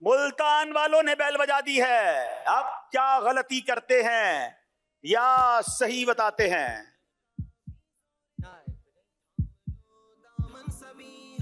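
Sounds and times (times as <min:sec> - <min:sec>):
speech: 0:00.1 - 0:06.9
deep heartbeat sound effect for suspense in a quiz contest: 0:05.4 - 0:06.8, 0:07.4 - 0:07.8, 0:08.4 - 0:08.8, 0:09.4 - 0:09.8, 0:10.4 - 0:10.8.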